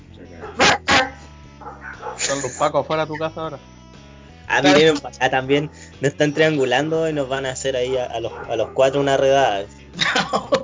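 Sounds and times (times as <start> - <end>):
dog barking: 0.4 - 2.5, 7.9 - 9.6
laughter: 2.0 - 3.4, 10.0 - 10.6
speech: 2.3 - 3.8, 4.5 - 10.6.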